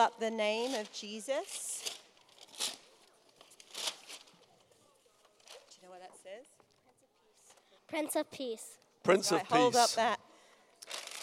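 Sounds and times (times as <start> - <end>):
speech: 0.0 - 2.0, 7.9 - 10.2
faint noise: 0.0 - 11.2
gift wrapping paper tearing and crinkling: 1.8 - 4.4.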